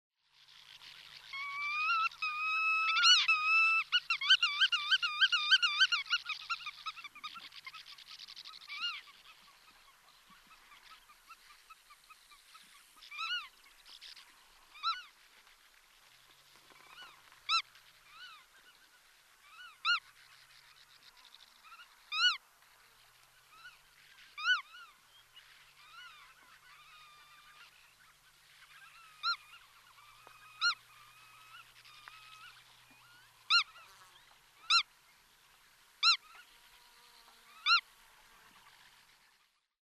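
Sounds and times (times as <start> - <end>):
black-tailed godwit calling: 1.2 - 12.1, 14.7 - 15.1, 19.5 - 20.1, 21.2 - 22.4, 24.4 - 25.0, 25.7 - 34.9, 36.0 - 36.5, 37.5 - 37.8.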